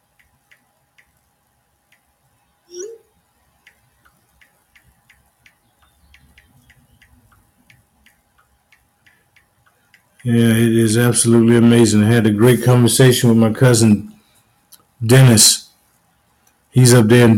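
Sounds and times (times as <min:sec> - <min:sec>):
typing on a phone touchscreen: 0:00.0 - 0:01.3, 0:03.6 - 0:10.4
speech: 0:10.2 - 0:14.1, 0:15.0 - 0:15.6, 0:16.8 - 0:17.3.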